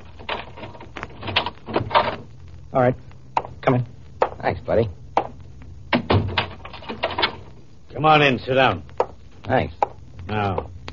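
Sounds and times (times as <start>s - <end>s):
door opening with scrape and knock: 0.1s - 2.3s, 5.9s - 7.5s
door chain rattling loose: 0.2s - 2.2s, 6.0s - 7.4s
speech: 2.8s - 3.1s, 3.7s - 5.0s, 8.0s - 8.9s, 9.5s - 10.7s.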